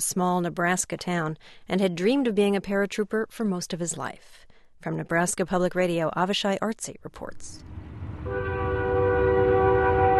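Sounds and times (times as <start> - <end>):
speech: 0.0 - 7.7
train passing close by a house in central Nebraska: 7.6 - 10.1
train horn: 8.2 - 10.1.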